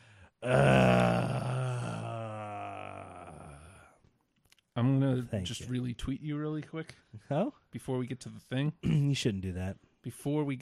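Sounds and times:
speech: 0.4 - 0.8, 4.8 - 10.6
loud drawn-out throaty human groan: 0.4 - 4.0.

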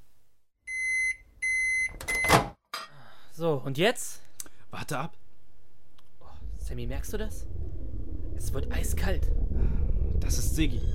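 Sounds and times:
microwave oven electronic beeps: 0.7 - 2.5
speech: 3.4 - 4.2, 4.8 - 5.2, 6.7 - 7.6, 8.4 - 9.4, 10.2 - 10.9.

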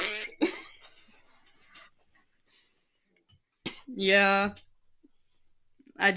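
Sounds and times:
fart: 0.0 - 0.5
speech: 4.0 - 4.7, 6.0 - 6.1.

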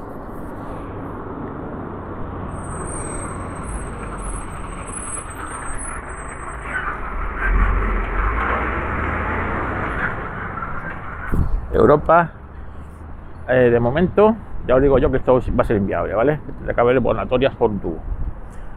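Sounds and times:
airplane passing overhead: 0.0 - 11.3
speech: 11.8 - 12.4, 13.5 - 18.2.

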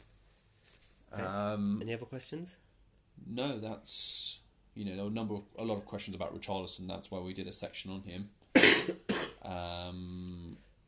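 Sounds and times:
speech: 1.1 - 10.4
person with a bad cough coughing: 8.6 - 9.5.

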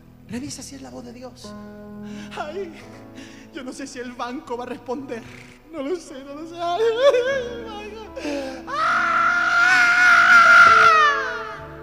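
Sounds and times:
speech: 0.3 - 9.2
man screaming: 8.7 - 11.7.

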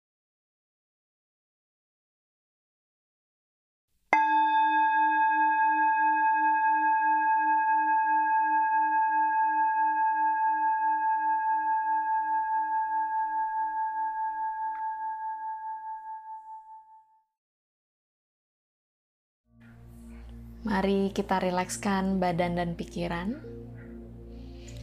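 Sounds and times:
singing bowl struck and ringing: 4.2 - 17.2
speech: 20.6 - 23.6.

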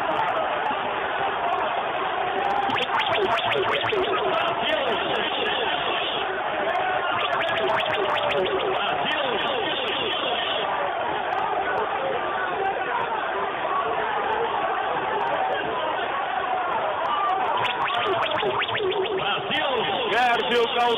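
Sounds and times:
football fans roaring in stadium stands: 0.0 - 17.8
football fans cheering and shouting in stadium stands: 0.0 - 20.9
chant-like calls of football fans: 2.6 - 6.2, 7.0 - 9.9.

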